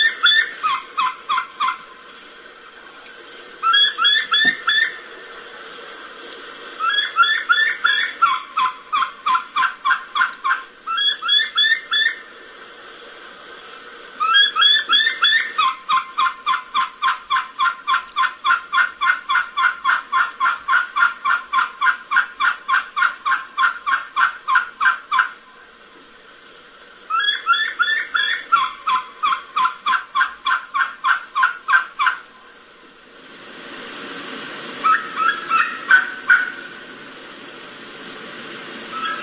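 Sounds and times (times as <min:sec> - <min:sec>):
wild turkey hen kee-kee call in spring: 0:00.0 - 0:01.9, 0:03.6 - 0:05.1, 0:06.8 - 0:12.3, 0:14.2 - 0:25.4, 0:27.1 - 0:32.3, 0:34.8 - 0:36.7, 0:38.9 - 0:39.2.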